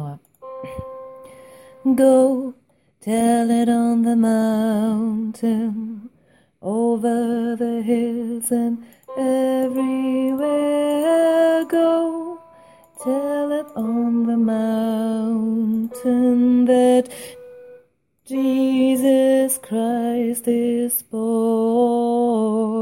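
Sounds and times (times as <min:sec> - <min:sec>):
tenor singing: 0:00.4 - 0:22.8.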